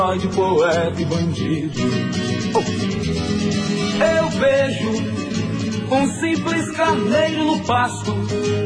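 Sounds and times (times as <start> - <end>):
speech: 0.1 - 8.6
rising dog yelps: 2.5 - 2.9
dogs barking and yipping: 2.6 - 2.8.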